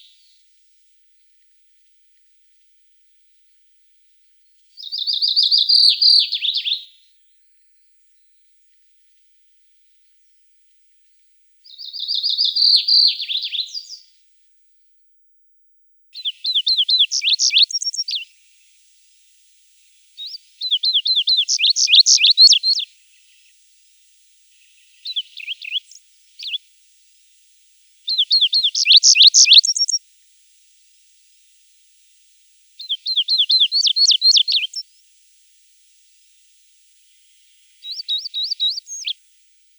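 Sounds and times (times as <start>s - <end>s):
chestnut bunting calling: 4.9s - 6.8s, 11.9s - 14.0s, 16.2s - 18.3s, 20.2s - 22.9s, 24.9s - 26.6s, 28.1s - 30.0s, 32.8s - 34.8s, 37.8s - 39.2s.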